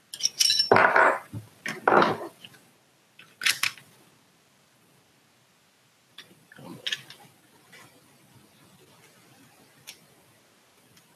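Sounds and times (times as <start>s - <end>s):
metallic clacks, snaps and rattles of a handgun being taken apart by hand: 0.1s - 0.7s, 3.2s - 3.9s, 6.2s - 7.3s.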